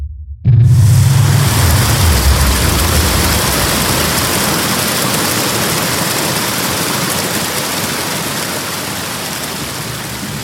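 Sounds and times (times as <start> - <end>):
deep steady roar of rushing air ahead of floodwater in a gallery: 0.7 - 6.3
floodwater surging and churning in a gallery: 0.7 - 10.4.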